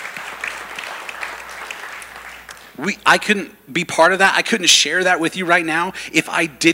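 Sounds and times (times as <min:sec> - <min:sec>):
congregation applauding: 0:00.0 - 0:02.9
speech: 0:02.8 - 0:06.7.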